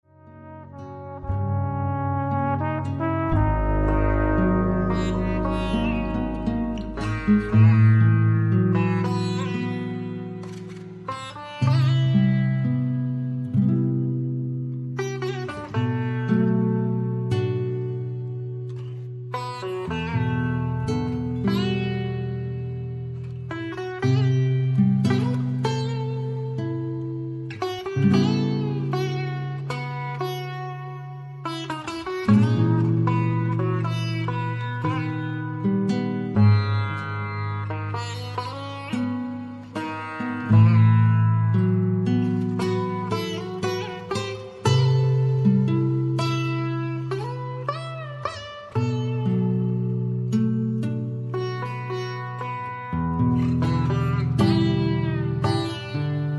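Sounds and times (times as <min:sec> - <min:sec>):
sitar solo: 0:00.0 - 0:56.3.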